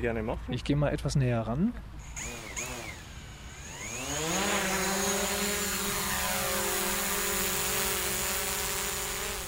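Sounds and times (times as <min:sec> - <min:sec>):
speech: 0:00.0 - 0:02.4
one very large and one very small drone taking off: 0:02.0 - 0:09.4.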